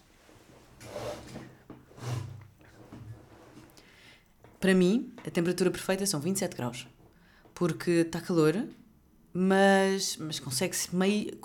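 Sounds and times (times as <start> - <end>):
chair pulled forward scraping across the floor: 0.0 - 3.8
speech: 4.6 - 7.0, 7.6 - 11.4.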